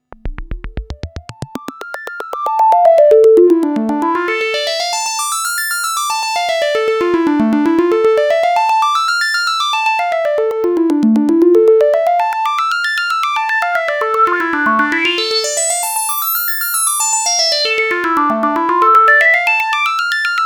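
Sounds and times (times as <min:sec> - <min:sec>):
Jupiter-8 synthesizer arpeggio without any effects: 0:00.0 - 0:20.4.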